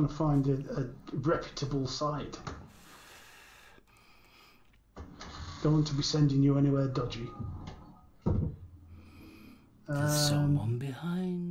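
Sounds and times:
speech: 0:00.0 - 0:02.6, 0:05.6 - 0:07.6, 0:09.9 - 0:11.4
faint hum: 0:00.0 - 0:11.4
door thud in a quiet room: 0:07.4 - 0:08.7.

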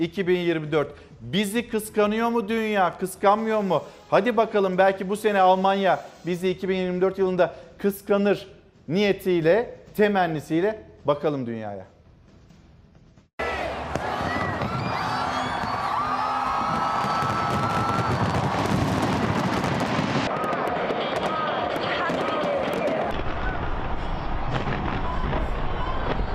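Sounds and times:
speech: 0:00.0 - 0:11.9
large crowd cheering: 0:13.4 - 0:26.3
New Year fireworks crackling and booming: 0:13.9 - 0:26.3
whoops and whistles: 0:14.1 - 0:18.8.

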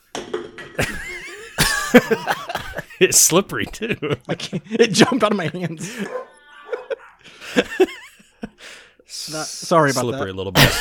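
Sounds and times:
speech: 0:00.8 - 0:01.0, 0:01.9 - 0:06.3, 0:07.6 - 0:08.0, 0:09.2 - 0:10.7
laughter: 0:00.8 - 0:09.0, 0:10.5 - 0:10.7
dogs barking: 0:05.9 - 0:07.3.

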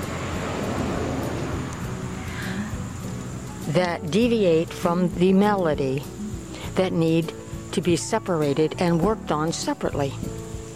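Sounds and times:
car engine and road noise outside: 0:00.0 - 0:10.7
speech: 0:03.7 - 0:06.2, 0:06.8 - 0:10.4.

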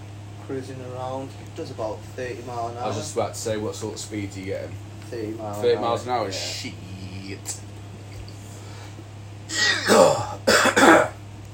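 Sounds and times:
speech: 0:00.5 - 0:07.7
person coughing deeply after smoking hash: 0:09.5 - 0:11.2.

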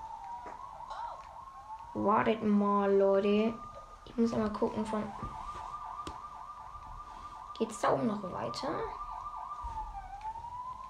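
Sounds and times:
ambulance siren wailing in a video game: 0:00.0 - 0:10.8
speech: 0:02.0 - 0:05.4, 0:07.6 - 0:09.0.

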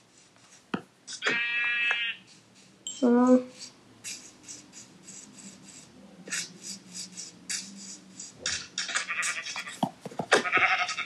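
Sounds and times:
speech: 0:01.1 - 0:01.5
video game sheep bleating: 0:01.2 - 0:02.2, 0:08.8 - 0:11.0.

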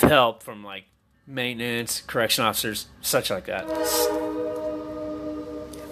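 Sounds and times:
speech: 0:00.0 - 0:04.6
passing train horn blast near a home by railroad tracks: 0:03.6 - 0:05.9.

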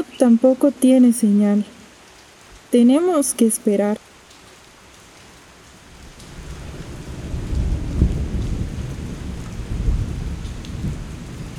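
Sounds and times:
heavy rain: 0:00.0 - 0:11.5
speech: 0:00.2 - 0:01.8, 0:02.7 - 0:04.1
deep thunder rumbling: 0:06.0 - 0:11.5.

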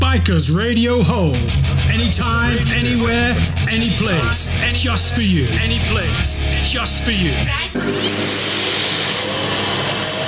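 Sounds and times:
speech: 0:00.1 - 0:08.6
vacuum cleaner motor roaring and whining in a radio jingle: 0:07.7 - 0:10.2.

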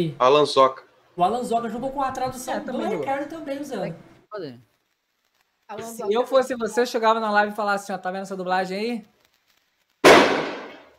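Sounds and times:
speech: 0:00.0 - 0:04.7, 0:05.7 - 0:09.1
single loud firecracker blast in the street: 0:10.0 - 0:10.9.

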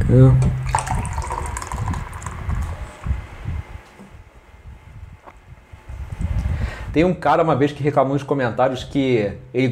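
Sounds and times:
speech: 0:00.1 - 0:00.5, 0:06.9 - 0:09.7
beer pouring: 0:00.5 - 0:03.1
person gulping beer: 0:00.7 - 0:02.7.

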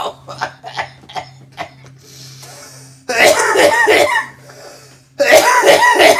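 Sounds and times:
harsh wheezing coughing fit after smoking a bowl: 0:00.0 - 0:01.9, 0:03.1 - 0:04.4, 0:05.2 - 0:06.1
low steady hum: 0:00.0 - 0:06.1.

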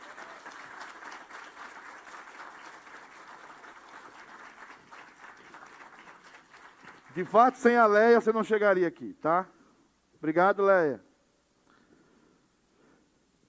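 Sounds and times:
crowd applauding: 0:00.0 - 0:07.8
speech: 0:07.2 - 0:09.6, 0:10.2 - 0:11.1.

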